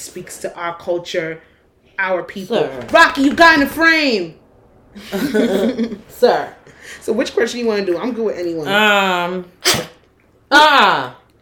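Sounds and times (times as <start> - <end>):
speech: 0.0 - 4.4, 5.0 - 9.9, 10.5 - 11.2
laughter: 5.0 - 6.0
sneeze: 9.5 - 10.1.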